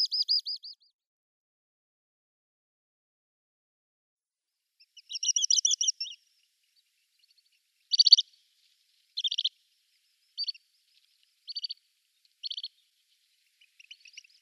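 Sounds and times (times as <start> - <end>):
male little stint song in display flight: 0.0 - 0.8, 4.8 - 6.2, 7.2 - 8.2, 9.2 - 9.5, 12.4 - 12.8.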